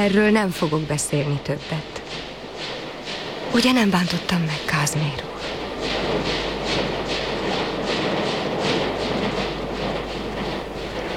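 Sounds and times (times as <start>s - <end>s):
speech: 0.0s - 2.2s, 3.5s - 5.4s
train wheels clickety-clack departing a railway station: 0.0s - 11.1s.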